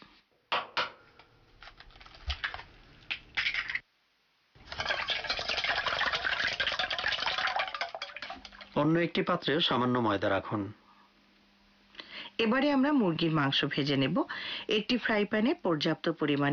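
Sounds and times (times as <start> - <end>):
two eggs cracking into a bowl: 0.5 - 3.8, 4.6 - 8.8
eggs being beaten in a bowl: 4.6 - 8.8
speech: 8.8 - 10.8, 12.4 - 16.5.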